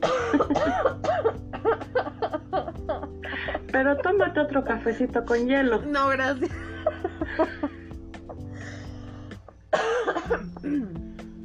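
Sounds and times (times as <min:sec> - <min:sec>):
short dry coughs: 0:00.0 - 0:02.4, 0:09.7 - 0:10.8
throaty laugh-like breaths: 0:00.1 - 0:03.8, 0:06.6 - 0:09.4
speech: 0:03.8 - 0:06.5, 0:07.4 - 0:07.6.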